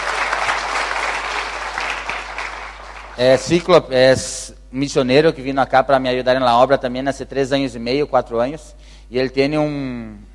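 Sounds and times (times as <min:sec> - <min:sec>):
congregation applauding: 0:00.0 - 0:03.8
speech: 0:03.2 - 0:10.3.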